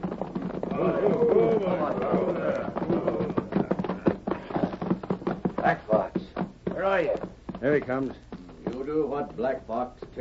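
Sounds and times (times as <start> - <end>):
horses galloping and reining in: 0.0 - 10.1
loud voices or whinnies: 0.6 - 4.8
speech: 7.0 - 8.3, 8.9 - 10.1.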